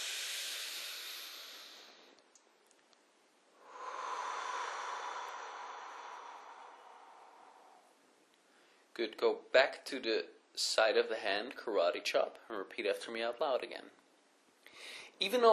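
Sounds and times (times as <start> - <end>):
deep breath: 0.0 - 2.2, 3.6 - 8.9, 14.6 - 15.2
speech: 9.0 - 14.0, 14.8 - 15.5.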